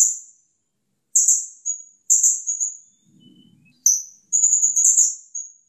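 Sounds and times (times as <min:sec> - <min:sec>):
serindit calling: 0:02.5 - 0:05.0.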